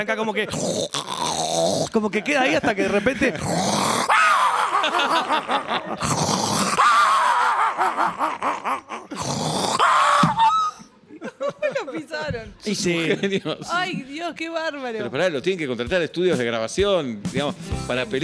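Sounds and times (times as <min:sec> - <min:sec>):
speech: 0:00.0 - 0:03.8, 0:05.0 - 0:06.4, 0:07.8 - 0:09.4, 0:11.9 - 0:18.2
person imitating a wheezing asthmatic Pekingese dog: 0:00.5 - 0:02.0, 0:03.4 - 0:10.9
laughter: 0:02.2 - 0:03.7, 0:04.3 - 0:06.3, 0:07.2 - 0:09.2, 0:10.6 - 0:14.1.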